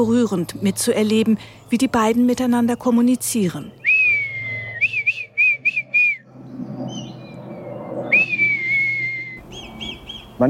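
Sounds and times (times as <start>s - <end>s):
speech: 0.0s - 3.8s
man whistling imitation of female red kite call: 3.8s - 6.3s, 8.0s - 10.3s.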